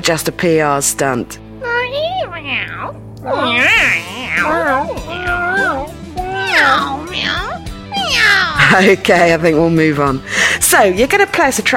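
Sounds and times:
speech: 0:00.0 - 0:05.8, 0:06.6 - 0:07.5, 0:08.1 - 0:11.7
chorus of cats meowing and yowling: 0:02.2 - 0:08.6.

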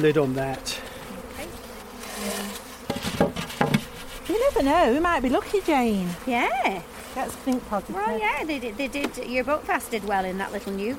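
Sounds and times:
speech: 0:00.0 - 0:00.9, 0:04.5 - 0:10.9
bees buzzing as they fly into a hive: 0:00.0 - 0:10.9
sharp knocks: 0:02.9 - 0:03.9.

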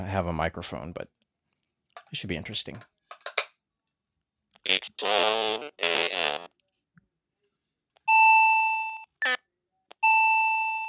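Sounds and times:
speech: 0:00.0 - 0:01.2, 0:02.1 - 0:03.0, 0:04.6 - 0:06.5
alarm clock sounding loud steady electronic tones: 0:08.1 - 0:09.1, 0:10.0 - 0:10.8.

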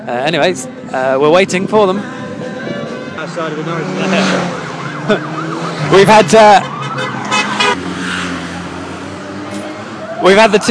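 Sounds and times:
speech: 0:00.0 - 0:02.2, 0:03.2 - 0:06.7, 0:10.2 - 0:10.6
busy street traffic in Norwich England: 0:00.0 - 0:10.6
wailing siren: 0:02.7 - 0:07.8, 0:09.5 - 0:10.6
car horn blasts: 0:06.7 - 0:07.8.

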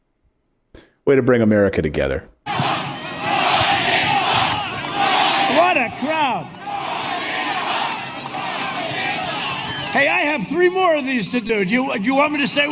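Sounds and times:
speech: 0:01.1 - 0:02.3, 0:10.0 - 0:12.6
large crowd chanting in unison at a rally: 0:02.5 - 0:10.1
sharp whistles: 0:07.8 - 0:10.2.

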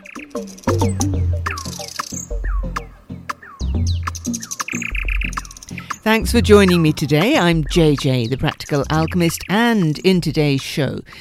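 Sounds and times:
nightingale singing: 0:00.0 - 0:11.1
speech: 0:00.3 - 0:01.1, 0:06.1 - 0:11.1
low steady hum: 0:05.0 - 0:09.5.

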